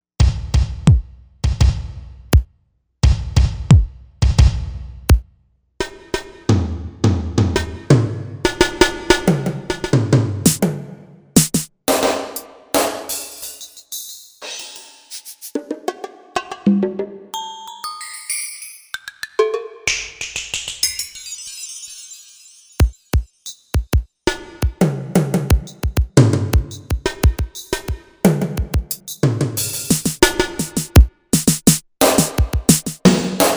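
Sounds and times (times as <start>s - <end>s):
drums on a Korg M1Rex: 0.2s - 16.9s, 22.8s - 33.5s.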